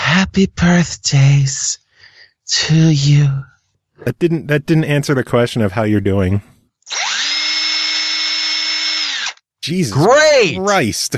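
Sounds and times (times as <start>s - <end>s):
speech: 0.1s - 1.8s, 2.5s - 7.0s, 9.6s - 11.1s
power tool running with a high steady whine: 6.9s - 9.4s.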